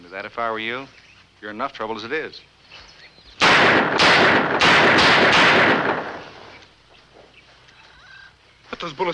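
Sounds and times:
speech: 0:00.1 - 0:02.5, 0:08.8 - 0:09.1
gunshots fired with blank cartridges: 0:03.4 - 0:06.5.

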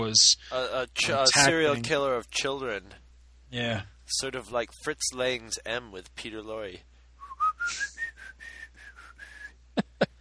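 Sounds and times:
speech: 0:00.0 - 0:06.9, 0:07.6 - 0:07.9
person whistling a classical melody: 0:07.2 - 0:09.6.

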